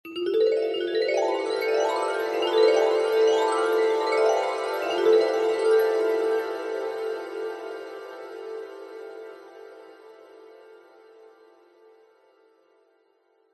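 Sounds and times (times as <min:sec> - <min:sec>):
dreamy mallet glissando: 0:00.1 - 0:09.9.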